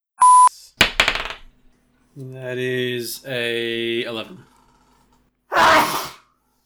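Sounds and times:
speech: 0:02.2 - 0:04.5
human sneeze: 0:05.5 - 0:06.2.

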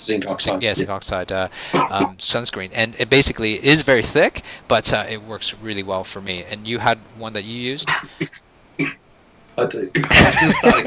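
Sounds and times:
speech: 0:00.0 - 0:09.0, 0:09.6 - 0:10.8
person coughing: 0:01.7 - 0:02.1, 0:07.9 - 0:09.0
laughter: 0:10.0 - 0:10.8.

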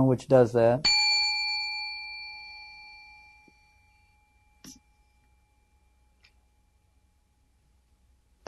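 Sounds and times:
speech: 0:00.0 - 0:01.0
single bell struck: 0:00.8 - 0:06.2.

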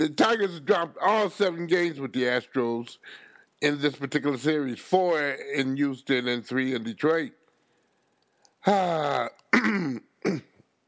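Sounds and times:
speech: 0:00.0 - 0:07.4, 0:08.6 - 0:10.5
man clearing his throat: 0:08.7 - 0:10.6.

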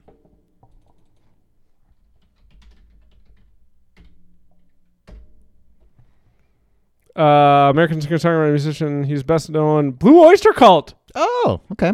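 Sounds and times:
typing on a computer keyboard: 0:00.6 - 0:04.8
speech: 0:07.2 - 0:11.9.

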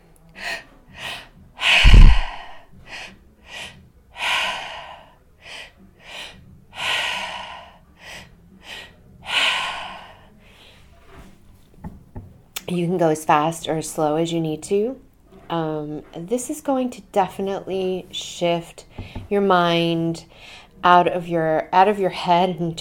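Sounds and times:
rhythmic three-part breathing with sniffing inhales and longer exhale: 0:00.3 - 0:11.2, 0:18.8 - 0:19.4
speech: 0:12.7 - 0:22.7.

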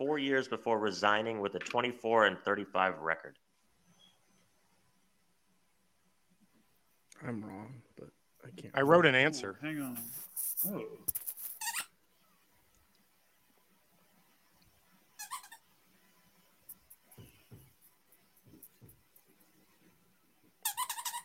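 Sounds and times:
speech: 0:00.2 - 0:03.5, 0:07.2 - 0:11.2
dog's squeaky toy squeezed: 0:11.4 - 0:12.0, 0:15.2 - 0:15.6, 0:20.6 - 0:21.2.

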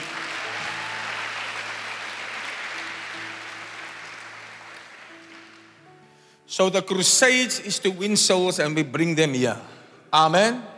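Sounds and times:
crowd clapping: 0:00.0 - 0:05.9
speech: 0:06.6 - 0:10.7.

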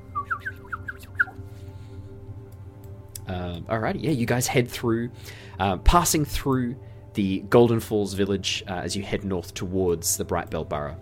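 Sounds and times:
voice imitating a bird's twitter: 0:00.2 - 0:01.4
speech: 0:03.3 - 0:10.9.

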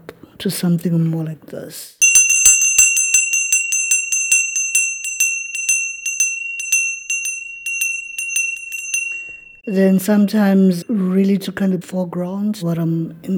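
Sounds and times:
speech: 0:00.4 - 0:02.0, 0:09.6 - 0:13.3
small bright bell ringing: 0:02.0 - 0:11.0.

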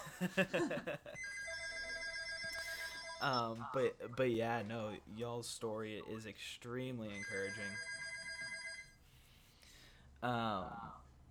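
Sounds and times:
laughter: 0:00.0 - 0:01.2
speech: 0:00.2 - 0:01.4, 0:03.2 - 0:07.9, 0:10.2 - 0:11.0
telephone ringing with a steady electronic tone: 0:01.2 - 0:03.8, 0:07.2 - 0:09.0.

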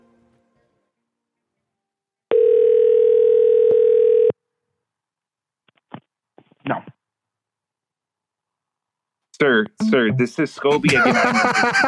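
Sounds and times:
loud steady phone ringback tone: 0:02.3 - 0:04.4
speech: 0:09.4 - 0:11.8
laughter: 0:10.6 - 0:11.8.

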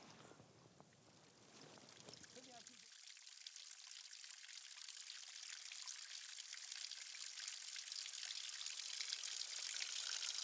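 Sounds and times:
water trickling down a sandstone slab: 0:01.5 - 0:10.4.

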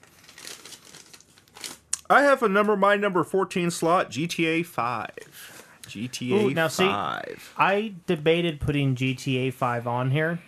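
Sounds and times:
paper notes crinkling as they are handled: 0:00.0 - 0:01.9
speech: 0:02.1 - 0:10.4.

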